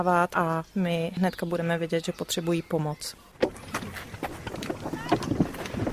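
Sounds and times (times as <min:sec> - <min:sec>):
speech: 0:00.0 - 0:04.1
hollow knocks and creaks of a person climbing into a small boat: 0:03.3 - 0:05.9
wind rushing over the microphone: 0:03.6 - 0:05.9.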